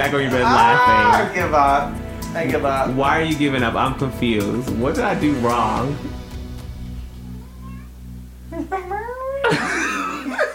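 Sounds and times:
speech: 0:00.0 - 0:06.2
cat meowing: 0:07.2 - 0:08.0
laughter: 0:09.4 - 0:10.5.

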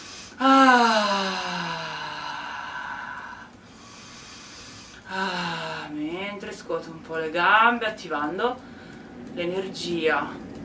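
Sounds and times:
long deep exhale voiced as a drawn-out sigh: 0:00.0 - 0:05.9
speech: 0:06.7 - 0:08.7, 0:09.4 - 0:10.4.

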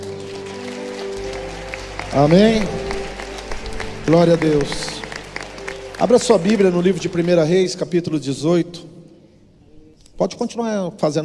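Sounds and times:
audience applauding: 0:00.0 - 0:08.3
speech: 0:02.1 - 0:02.9, 0:04.1 - 0:04.9, 0:06.0 - 0:08.9, 0:10.2 - 0:11.2.

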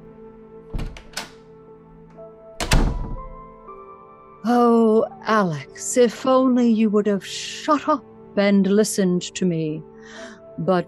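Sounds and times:
door knocks and rattles: 0:00.7 - 0:01.4, 0:02.6 - 0:03.5
speech: 0:04.5 - 0:10.8.

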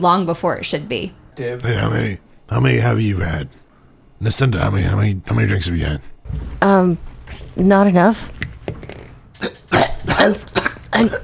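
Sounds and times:
speech: 0:00.0 - 0:03.6, 0:04.2 - 0:08.5, 0:10.1 - 0:11.2
harsh raspy coughing from up in the vents: 0:09.4 - 0:11.2.

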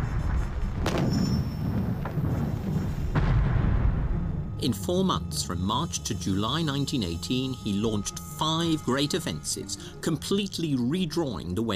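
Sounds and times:
continuous deep rumble of German artillery firing gas shells in Flanders: 0:00.0 - 0:05.7
speech: 0:04.6 - 0:11.7.

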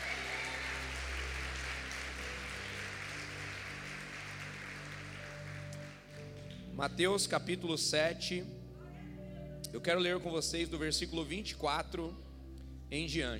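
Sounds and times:
congregation applauding: 0:00.0 - 0:06.6
soft sustained keyboard chords: 0:00.8 - 0:13.3
speech: 0:06.8 - 0:08.6, 0:09.7 - 0:12.2, 0:12.9 - 0:13.3.

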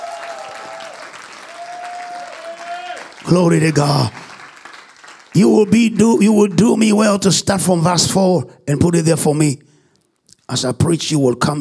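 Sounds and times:
audience clapping: 0:00.0 - 0:07.3
speech: 0:03.3 - 0:04.3, 0:05.3 - 0:09.6, 0:10.5 - 0:11.6.

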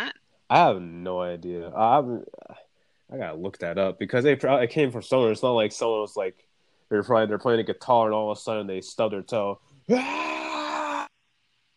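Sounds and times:
speech: 0:00.5 - 0:10.4
harsh mock scream of pain in screamo style: 0:09.9 - 0:11.1.

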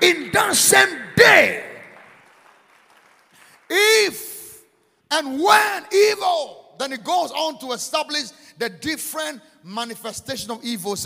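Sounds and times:
speech: 0:00.0 - 0:01.7, 0:03.7 - 0:04.3, 0:05.1 - 0:11.0
audience clapping hands: 0:00.8 - 0:04.2.

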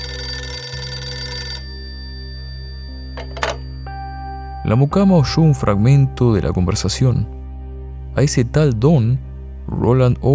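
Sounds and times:
telephone bell ringing: 0:00.0 - 0:04.7
speech: 0:04.7 - 0:07.4, 0:08.2 - 0:10.3.

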